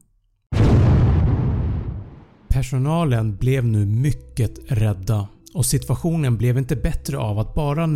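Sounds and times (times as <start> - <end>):
loud explosion with deep rumbling boom: 0.5 - 2.5
speech: 2.6 - 7.9.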